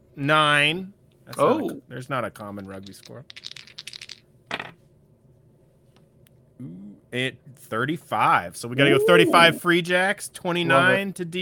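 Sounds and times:
speech: 0.2 - 3.5, 6.6 - 11.3
dice rattling: 2.6 - 4.7.

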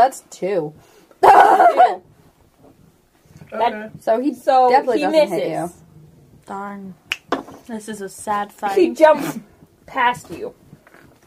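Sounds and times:
speech: 0.0 - 2.1, 3.5 - 5.8, 6.5 - 7.0, 7.7 - 10.6
agitated dog barking and whimpering: 1.2 - 2.0.

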